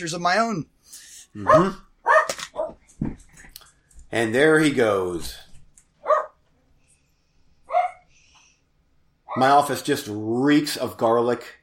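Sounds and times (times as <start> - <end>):
speech: 0.0 - 2.2, 4.1 - 5.5, 9.3 - 11.6
dogs barking sharply: 1.4 - 2.8, 6.0 - 6.4, 7.7 - 8.1, 9.3 - 9.6
lower dog bark: 1.4 - 2.8, 6.0 - 6.4, 7.7 - 8.1.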